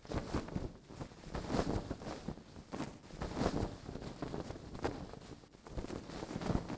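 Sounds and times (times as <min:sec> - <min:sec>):
banner flapping: 0:00.0 - 0:06.7.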